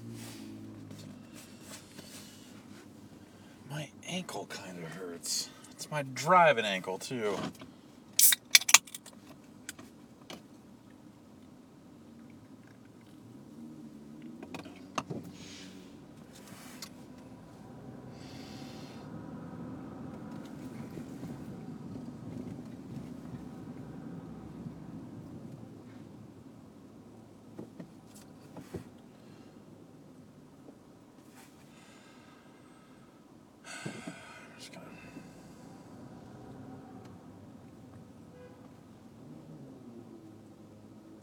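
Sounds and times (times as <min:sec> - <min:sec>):
steady roar of passing traffic: 0:00.0 - 0:09.8, 0:13.0 - 0:27.4, 0:31.8 - 0:41.2
speech: 0:04.2 - 0:07.7
sharp clanks: 0:08.2 - 0:09.1.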